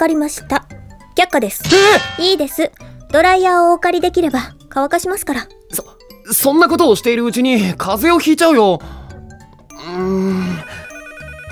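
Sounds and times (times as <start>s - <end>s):
speech: 0.0s - 9.0s
telephone ringing with a sustained electronic tone: 10.6s - 11.5s.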